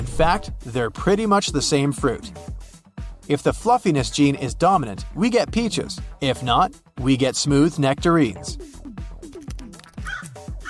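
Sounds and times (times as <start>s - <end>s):
speech: 0.2s - 2.6s, 3.3s - 8.7s
crow cawing: 10.0s - 10.6s.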